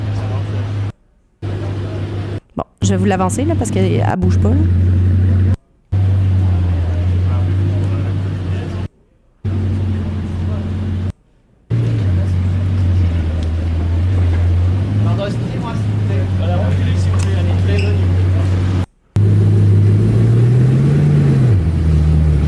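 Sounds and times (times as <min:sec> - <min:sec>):
new Bugatti Chiron supercar engine droning: 0:00.0 - 0:22.4
speech: 0:02.8 - 0:04.9.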